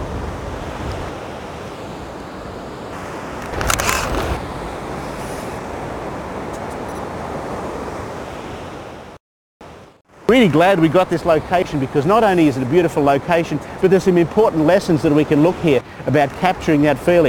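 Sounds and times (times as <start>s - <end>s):
wind noise: 0.0s - 8.8s
loud ocean surf: 0.0s - 17.2s
camera shutter clicks taking photos: 3.4s - 4.4s
speech: 10.3s - 17.2s.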